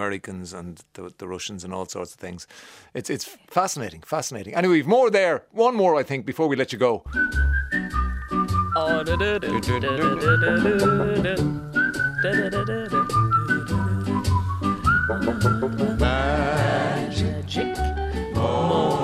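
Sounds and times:
speech: 0.0 - 7.6, 8.8 - 11.6, 12.2 - 13.4, 15.1 - 16.3
person whistling a lively lilting melody: 7.1 - 16.1
rhythmic accompaniment: 7.1 - 19.0.

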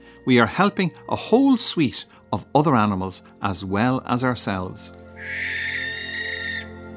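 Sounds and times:
speech: 0.2 - 5.8
barn owl screech: 5.2 - 6.8.

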